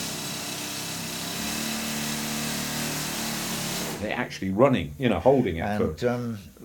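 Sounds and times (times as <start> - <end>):
pneumatic air-leg rock drill running: 0.0 - 4.0
speech: 4.0 - 6.6.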